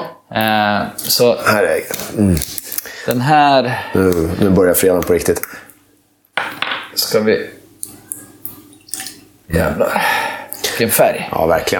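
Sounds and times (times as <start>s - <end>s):
speech: 0.4s - 5.6s, 7.0s - 7.6s, 9.5s - 10.2s, 10.8s - 11.7s
rum at 50 percent pouring into a glass: 8.1s - 9.2s.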